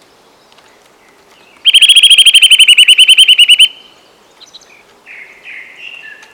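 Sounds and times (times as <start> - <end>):
Eurasian nuthatch Sitta europaea calling: 1.7 - 3.8.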